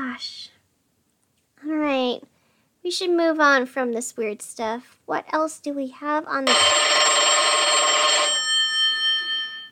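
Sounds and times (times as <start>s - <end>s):
speech: 0.2s - 0.5s, 2.9s - 6.9s
telephone ringing with electronic trill: 6.5s - 9.7s.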